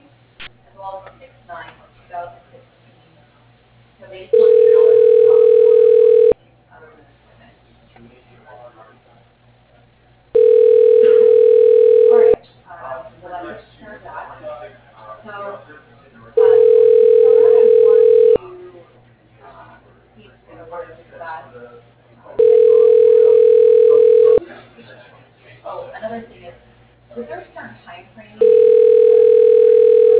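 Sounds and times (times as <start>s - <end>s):
telephone ringback tone as a call is transferred: 4.4s - 6.4s, 10.4s - 12.4s, 16.4s - 18.4s, 22.4s - 24.4s, 28.4s - 30.1s.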